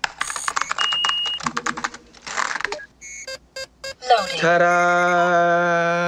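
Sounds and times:
fingers typing rapidly on a computer keyboard: 0.0 - 2.0
short electronic beeps: 0.2 - 1.4, 2.8 - 5.4
speech: 4.1 - 5.9.

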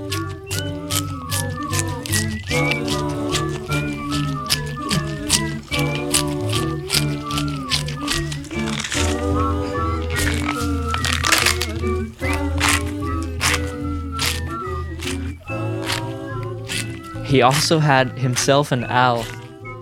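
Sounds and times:
celery crunching and tearing as a percussion instrument: 0.0 - 19.6
loud music track with sustained bass and harmonic tones: 0.0 - 19.8
speech: 17.3 - 19.4.

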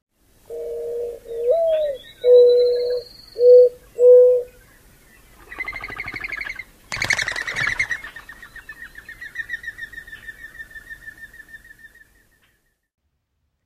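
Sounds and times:
mourning dove cooing song: 0.5 - 4.5, 5.4 - 8.4
mourning dove wing whirl with high twittering whistle: 5.4 - 9.6.

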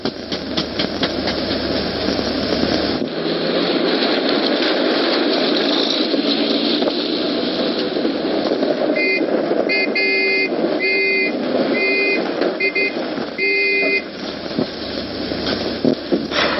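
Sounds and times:
car engine roaring along the road: 0.0 - 16.5
short repeated tonal blasts: 9.0 - 14.1.

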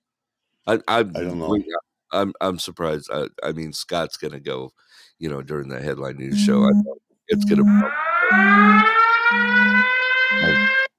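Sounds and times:
speech: 0.6 - 10.7
alarm with a steady bright electronic tone: 6.3 - 10.9.

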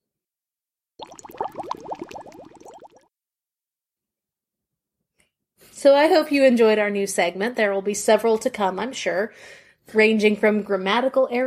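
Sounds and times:
water boiling in a pot: 1.0 - 3.0
speech: 5.8 - 11.4.

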